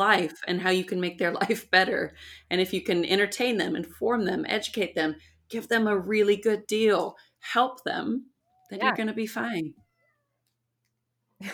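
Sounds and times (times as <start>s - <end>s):
speech: 0.0s - 9.8s, 11.4s - 11.5s
pet cat meowing: 9.8s - 10.4s.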